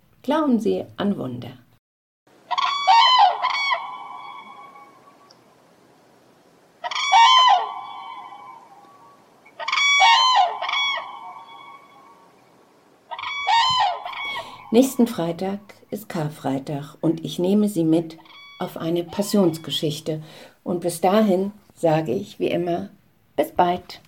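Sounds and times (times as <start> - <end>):
speech: 0.2 - 1.6, 14.8 - 24.0
trumpeting crane calls: 2.4 - 5.4, 6.8 - 15.0, 18.2 - 19.8.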